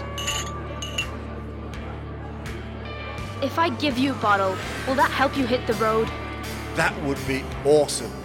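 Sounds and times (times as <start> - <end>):
glasses clinking in a toast: 0.0 - 1.3
speech: 3.4 - 6.2, 6.8 - 8.2.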